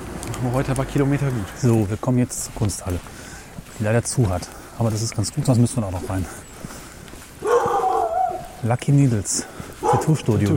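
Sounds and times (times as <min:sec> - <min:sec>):
speech: 0:00.4 - 0:06.8, 0:08.6 - 0:10.5
dog barking at a half-timbered house: 0:07.4 - 0:08.6, 0:09.8 - 0:10.2.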